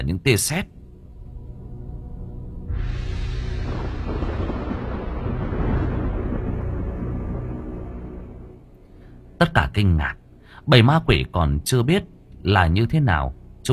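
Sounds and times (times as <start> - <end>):
speech: 0.0 - 0.8, 9.4 - 13.7
heavy sustained rumbling roar of explosions from the sky: 1.3 - 8.7
deep explosion blast from the sky: 1.3 - 8.8.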